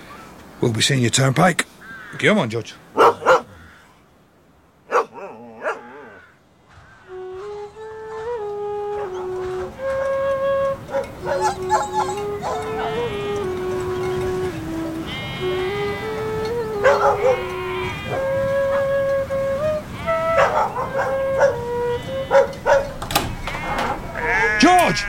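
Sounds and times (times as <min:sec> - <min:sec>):
speech: 0:00.6 - 0:03.1
dogs howling: 0:02.9 - 0:03.7, 0:04.9 - 0:06.4, 0:07.1 - 0:25.0
dogs barking: 0:02.9 - 0:03.8, 0:04.8 - 0:06.3, 0:08.1 - 0:09.6, 0:10.8 - 0:14.8, 0:16.0 - 0:23.0, 0:23.7 - 0:25.0.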